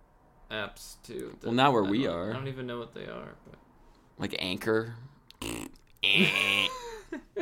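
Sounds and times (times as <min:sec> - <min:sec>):
speech: 0:00.5 - 0:07.4
loud cartoonish fart sound effect: 0:05.3 - 0:06.7.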